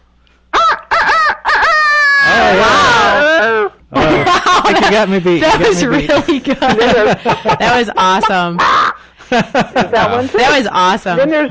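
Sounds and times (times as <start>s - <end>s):
person imitating a rooster crow: 0.6s - 3.7s, 8.6s - 9.0s
laughter: 0.9s - 10.9s
speech: 3.9s - 11.4s.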